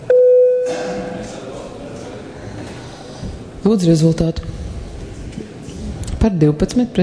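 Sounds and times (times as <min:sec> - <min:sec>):
electronic call bell chime before a vote in parliament: 0:00.1 - 0:00.7
soft murmur: 0:00.7 - 0:07.0
speech: 0:03.6 - 0:04.6, 0:06.2 - 0:07.0.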